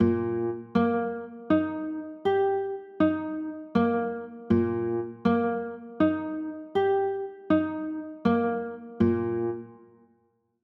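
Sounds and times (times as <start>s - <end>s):
E flat major chords: 0.0s - 9.8s.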